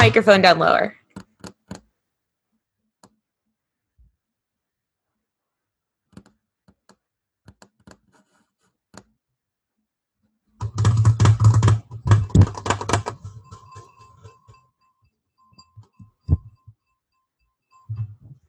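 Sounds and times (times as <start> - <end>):
speech: 0.0 - 1.0
long fingernails tapping a hard surface: 10.6 - 14.0.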